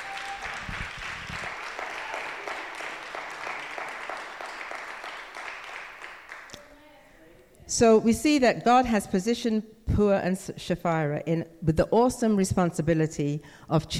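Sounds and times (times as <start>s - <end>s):
audience applause for a woman speaker: 0.0s - 6.6s
speech: 7.7s - 13.9s.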